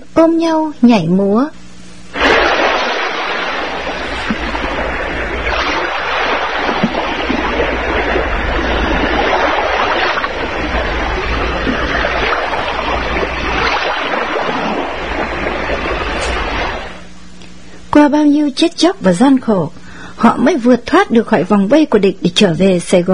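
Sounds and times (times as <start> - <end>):
speech: 0.2 - 1.6, 18.0 - 23.1
low rumble: 2.1 - 17.2
waves lapping against a boat's side: 2.1 - 17.2.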